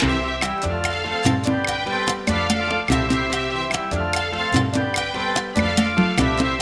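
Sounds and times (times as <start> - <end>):
danzon music in nuevo ritmo style: 0.0 - 6.5.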